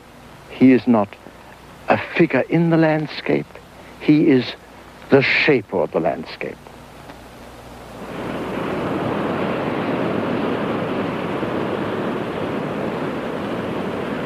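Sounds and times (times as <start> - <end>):
speech: 0.5 - 1.3, 1.9 - 6.6
Pacific Ocean waves breaking on beach: 8.0 - 14.2.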